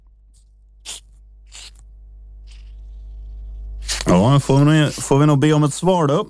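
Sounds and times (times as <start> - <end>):
low steady hum: 0.0 - 6.2
screw cap opened on a bottle of sugar-free julmust soda releasing fizzy hiss: 0.9 - 1.8, 3.8 - 4.1
speech: 4.1 - 6.2.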